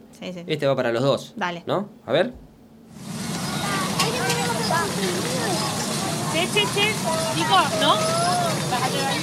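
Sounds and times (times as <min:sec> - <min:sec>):
speech: 0:00.2 - 0:03.0, 0:04.7 - 0:05.7, 0:06.3 - 0:09.2
traffic rumble: 0:02.9 - 0:09.2
busy outdoor crowd with overlapping voices in a plaza: 0:03.1 - 0:09.2
children shouting and calling in a crowded plaza: 0:03.4 - 0:09.2.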